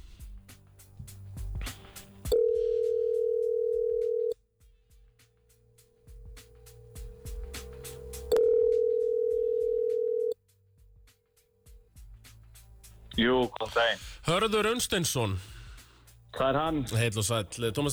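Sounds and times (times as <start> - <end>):
ringback tones on an outgoing phone call: 2.4 - 4.3, 8.3 - 10.4
speech: 13.6 - 15.5, 16.4 - 17.9.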